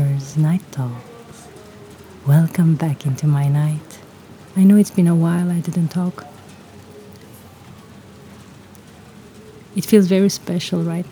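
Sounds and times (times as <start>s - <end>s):
rain pattering on a surface outdoors after hot weather: 0.0s - 11.1s
speech: 0.4s - 1.1s, 2.2s - 4.0s, 4.6s - 6.3s, 9.8s - 11.1s.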